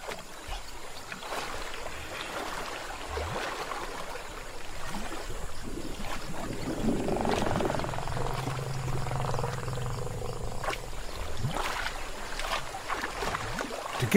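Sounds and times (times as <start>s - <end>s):
splashes in shallow muddy water: 0.0s - 14.1s
low rumbling tone: 6.4s - 11.5s
elephants snorting and blowing through their trunks into muddy water: 6.5s - 10.9s.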